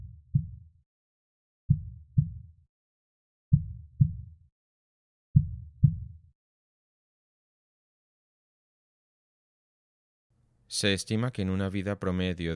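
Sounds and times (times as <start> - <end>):
human heartbeat: 0.0 - 0.6, 1.7 - 2.5, 3.5 - 4.4, 5.4 - 6.2
speech: 10.7 - 12.5.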